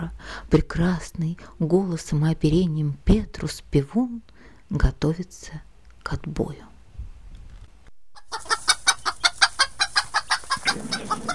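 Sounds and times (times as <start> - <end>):
speech: 0.0 - 6.7
hens clucking in a henhouse: 8.1 - 11.3.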